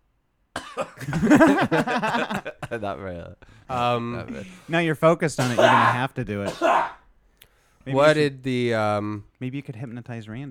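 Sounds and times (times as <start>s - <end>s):
person coughing: 0.6s - 1.5s, 5.4s - 7.0s
laughter: 1.0s - 4.8s
speech: 1.0s - 7.0s, 7.8s - 10.4s.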